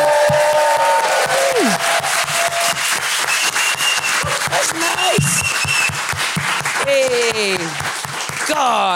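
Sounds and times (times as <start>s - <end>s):
sliding whoop of a cheer from the audience: 0.0s - 6.0s
large live crowd applauding: 0.0s - 8.9s.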